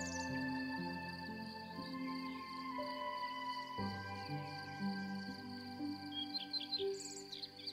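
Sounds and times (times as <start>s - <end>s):
insects chirring: 0.0s - 7.7s.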